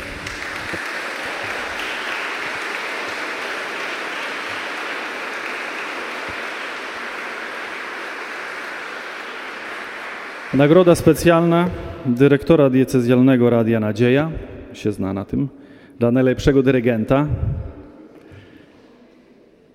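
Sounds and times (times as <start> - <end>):
audience applause: 0.0 - 12.0
speech: 10.6 - 17.7.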